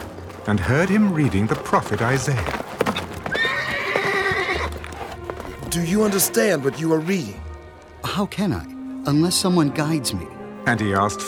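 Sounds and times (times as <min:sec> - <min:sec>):
horse hooves clip-clopping: 0:00.0 - 0:08.6
speech: 0:00.4 - 0:02.6, 0:05.7 - 0:07.4, 0:08.1 - 0:11.2
horse pulling a chariot whinnying: 0:02.8 - 0:06.4.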